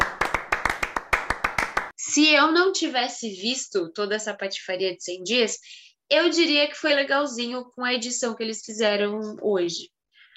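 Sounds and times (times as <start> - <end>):
person applauding with sharp hand claps: 0.0 - 2.0
speech: 2.1 - 9.9.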